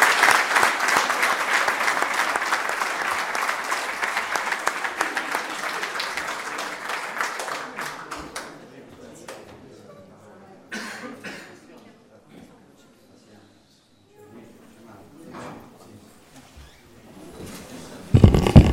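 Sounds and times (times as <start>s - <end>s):
audience applause: 0.0s - 8.5s, 18.2s - 18.7s.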